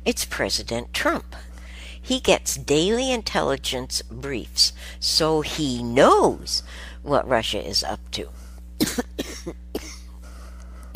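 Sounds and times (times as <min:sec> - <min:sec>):
low steady hum: 0:00.0 - 0:10.9
speech: 0:00.1 - 0:09.9
person coughing: 0:08.8 - 0:10.1.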